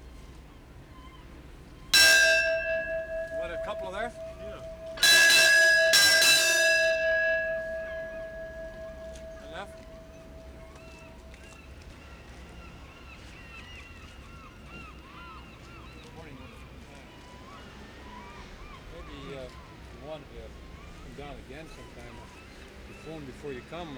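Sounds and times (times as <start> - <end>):
bell struck with long ringing decay: 2.0 - 11.1
speech: 23.2 - 23.9.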